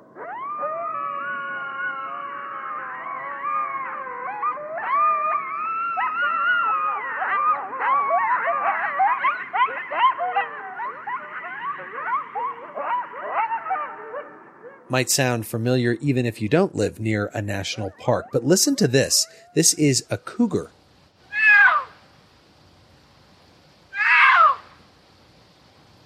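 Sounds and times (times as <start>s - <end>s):
coyotes howling and yipping in Yellowstone National Park: 0.0s - 14.9s, 17.6s - 19.6s, 21.3s - 22.0s, 23.9s - 24.9s
speech: 14.9s - 20.8s.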